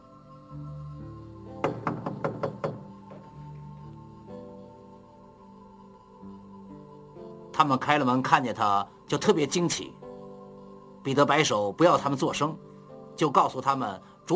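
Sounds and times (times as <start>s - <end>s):
firm knocks on a door: 1.6s - 3.2s
speech: 7.6s - 10.0s, 11.0s - 14.3s.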